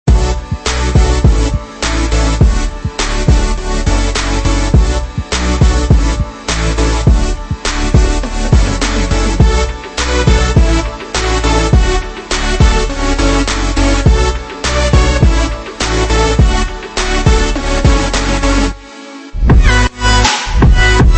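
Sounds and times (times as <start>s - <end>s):
future bass music: 0.1s - 21.1s.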